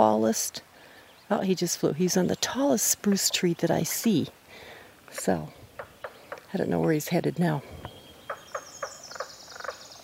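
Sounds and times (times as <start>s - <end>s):
speech: 0.1s - 0.7s, 1.3s - 4.4s, 5.1s - 5.6s, 6.5s - 7.7s
frogs giving courtship calls in a beaver-flooded wetland: 5.1s - 7.2s, 7.8s - 10.0s.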